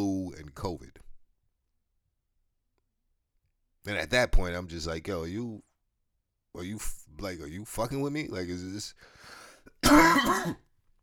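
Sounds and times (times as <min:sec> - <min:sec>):
speech: 0:00.0 - 0:01.0, 0:03.8 - 0:05.7, 0:06.6 - 0:10.6
rough raspy smoker's cough: 0:09.8 - 0:10.7.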